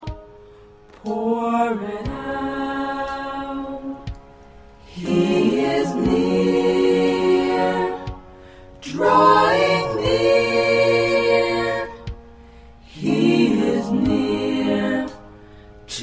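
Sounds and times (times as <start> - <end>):
SATB four-part choir singing: 1.0 - 4.2, 4.8 - 12.2, 12.8 - 16.0.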